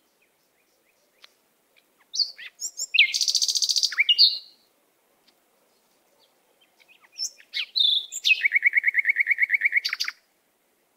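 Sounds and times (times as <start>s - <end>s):
canary singing: 1.1s - 4.6s, 6.2s - 10.2s.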